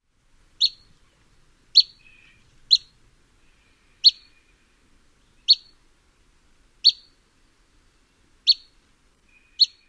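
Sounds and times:
pygmy nuthatch calls: 0:00.6 - 0:01.0, 0:01.8 - 0:02.9, 0:03.6 - 0:04.5, 0:05.4 - 0:05.8, 0:06.8 - 0:07.1, 0:08.4 - 0:09.8.

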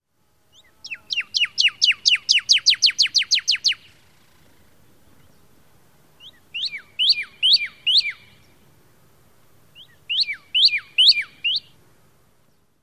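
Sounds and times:
Pyrrhuloxia songs: 0:00.4 - 0:08.8, 0:09.7 - 0:11.8, 0:12.4 - 0:12.8.

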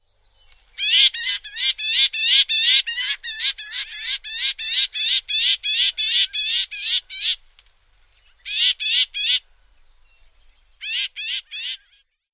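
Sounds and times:
Pinyon Jay calls: 0:00.8 - 0:07.4, 0:08.4 - 0:09.4, 0:10.8 - 0:12.0.

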